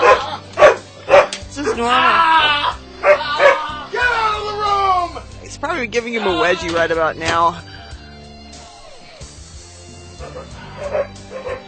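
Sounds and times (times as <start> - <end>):
dog barking and yipping: 0.0 - 1.9, 3.0 - 4.1, 10.1 - 11.6
speech: 1.8 - 2.3, 5.8 - 7.7.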